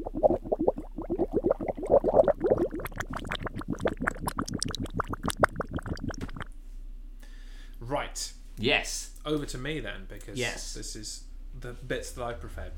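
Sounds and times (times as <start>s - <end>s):
squelchy ASMR bubbling sound effect: 0.0s - 6.5s
speech: 8.2s - 12.7s.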